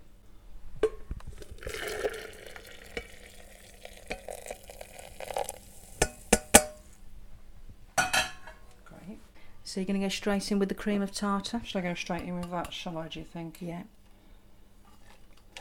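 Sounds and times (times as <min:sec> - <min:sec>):
just over a pint of water pouring into a jug: 0:01.3 - 0:06.5
speech: 0:09.8 - 0:14.0.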